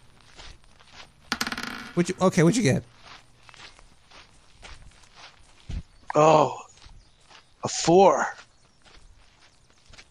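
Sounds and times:
dice tumbling across a hard surface: 1.3 - 2.2
speech: 2.0 - 3.0, 6.2 - 6.6, 7.6 - 8.4.

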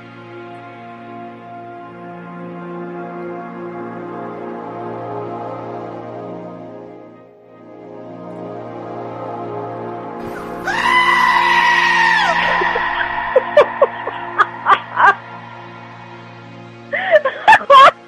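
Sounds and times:
goat screaming bleat: 10.6 - 13.4
laughter: 12.2 - 16.1, 16.9 - 18.0.

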